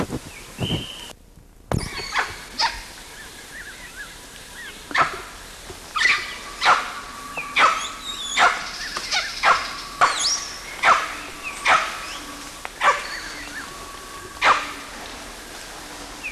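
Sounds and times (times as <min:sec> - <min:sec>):
two dogs barking: 0:01.9 - 0:03.0, 0:04.9 - 0:05.3, 0:06.0 - 0:15.0
two dogs whining with high squealing whimpers: 0:06.0 - 0:14.9.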